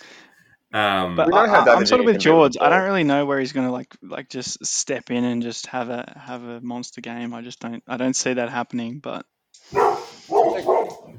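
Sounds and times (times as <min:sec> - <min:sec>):
speech: 0:00.7 - 0:09.3
dogs barking: 0:09.7 - 0:11.1.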